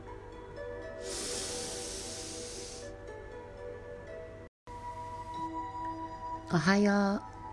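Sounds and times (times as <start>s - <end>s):
slow airy exhale: 0.9s - 3.0s
speech: 6.5s - 7.4s.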